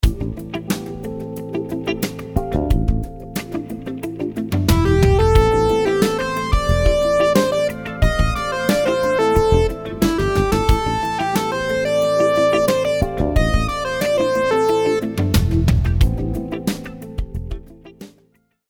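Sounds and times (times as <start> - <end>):
syncopated rhythm: 0.0 - 18.3.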